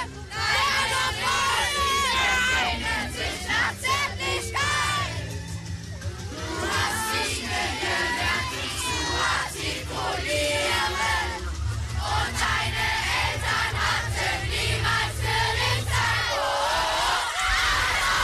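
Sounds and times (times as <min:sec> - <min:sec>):
secondary-school students yelling outdoors: 0:00.0 - 0:05.4, 0:06.3 - 0:12.6, 0:15.9 - 0:18.2
large crowd of secondary-school students singing and chanting outdoors in Germany: 0:00.0 - 0:18.2.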